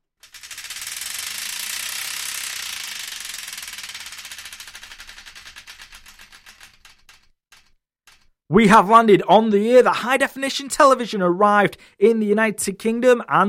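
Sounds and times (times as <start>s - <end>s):
spun prize wheel ratcheting clicks: 0.1s - 8.8s
speech: 8.5s - 13.4s.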